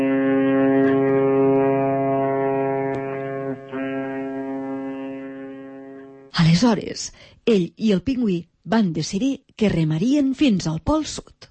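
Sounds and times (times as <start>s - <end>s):
ship's horn blast: 0.0s - 6.4s
speech: 6.6s - 11.4s.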